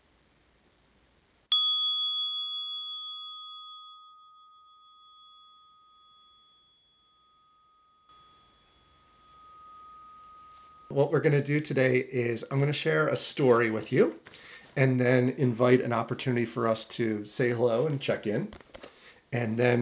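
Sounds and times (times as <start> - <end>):
meditation bell ringing: 1.5 - 12.4
speech: 10.9 - 18.6, 19.3 - 19.8.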